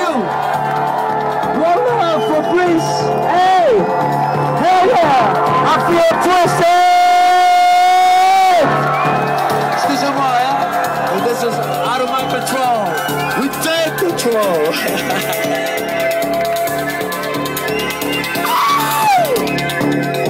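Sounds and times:
packed party crowd cheering and shouting: 0.0 - 20.2
speech: 5.9 - 6.7
laughter: 14.4 - 15.9
person whooping: 18.3 - 19.5.

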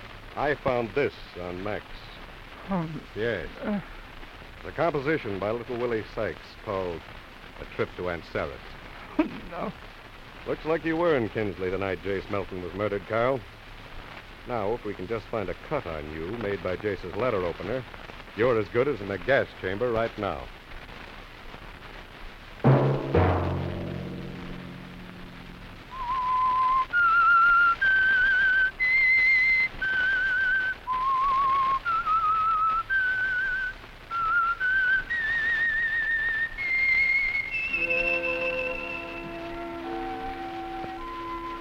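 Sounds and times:
speech: 0.4 - 4.0, 4.6 - 13.6, 14.4 - 20.6
orchestral burst: 22.6 - 26.6, 37.5 - 41.5
whistled melody: 25.9 - 41.5.

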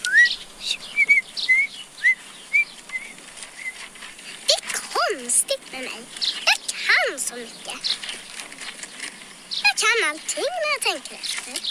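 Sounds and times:
person whistling: 0.0 - 3.8
faint hiss: 0.0 - 11.6
speech: 10.1 - 11.6.

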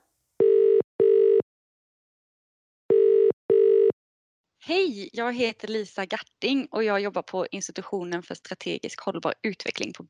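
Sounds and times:
outgoing phone call ringback tone of electronic beeps: 0.4 - 1.4, 2.9 - 4.0
speech: 4.6 - 10.0.

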